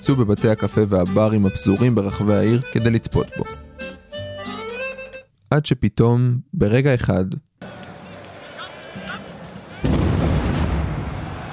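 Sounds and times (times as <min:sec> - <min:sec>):
speech: 0:00.0 - 0:03.7, 0:05.5 - 0:07.5
crowd noise: 0:07.6 - 0:11.5
abrupt blast-like burst: 0:09.7 - 0:11.5
loud explosion: 0:09.8 - 0:11.5.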